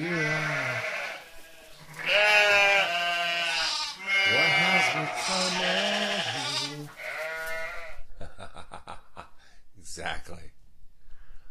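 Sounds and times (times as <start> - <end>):
goats bleating: 0.0 - 8.0.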